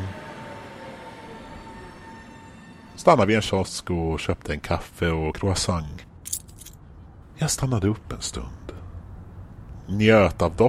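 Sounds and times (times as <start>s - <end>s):
tram riding on rails into the city centre: 0.0s - 10.6s
speech: 3.0s - 6.1s, 7.4s - 8.7s, 9.9s - 10.6s.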